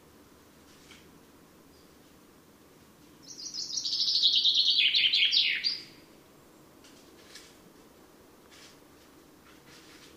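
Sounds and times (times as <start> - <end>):
light background hiss: 0.0 - 10.1
Common chaffinch singing: 3.2 - 6.0.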